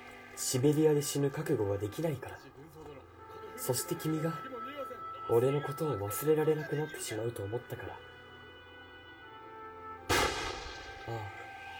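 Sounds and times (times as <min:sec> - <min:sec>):
steady droning background: 0:00.0 - 0:11.7
speech: 0:00.4 - 0:04.6, 0:05.3 - 0:08.1, 0:11.1 - 0:11.4
approaching gunfire: 0:10.1 - 0:11.7
softer lower blast: 0:10.1 - 0:11.7.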